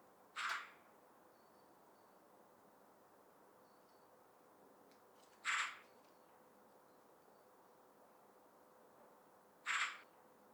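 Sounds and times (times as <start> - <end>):
Eurasian magpie Pica pica call: 9.7 - 10.0.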